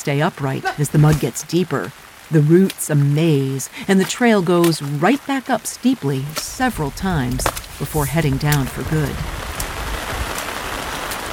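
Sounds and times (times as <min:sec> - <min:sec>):
speech: 0:00.0 - 0:09.4
heavy rain: 0:00.0 - 0:11.3.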